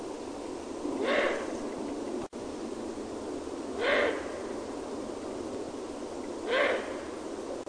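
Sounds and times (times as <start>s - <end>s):
steady background hiss: 0.0s - 7.6s
Eurasian eagle-owl giving raspy hissing calls: 1.0s - 1.7s, 3.6s - 4.9s, 6.3s - 7.4s.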